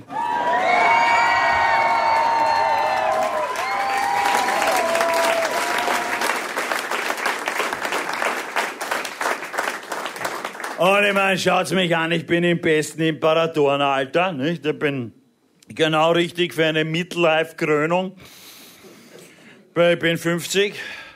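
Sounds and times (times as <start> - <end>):
crowd cheering and whooping with high shouts: 0.0 - 6.6
dense clapping audience applause: 0.0 - 11.2
speech: 10.9 - 18.4, 19.8 - 21.0.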